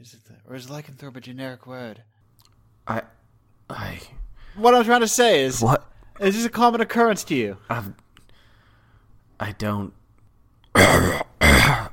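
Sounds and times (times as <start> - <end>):
speech: 0.0 - 2.2, 2.9 - 8.0, 9.4 - 10.0
man coughing with loud rasping coughs: 10.7 - 11.9.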